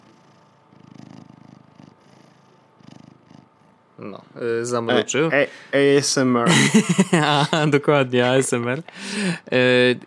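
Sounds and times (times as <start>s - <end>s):
cat purring: 0.0s - 4.3s
speech: 4.0s - 10.0s
laughter: 6.4s - 9.6s.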